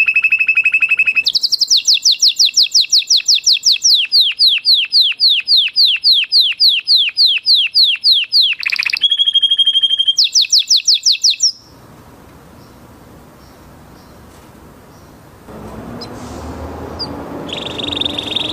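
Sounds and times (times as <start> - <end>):
canary singing: 0.0 - 11.9, 16.9 - 18.5.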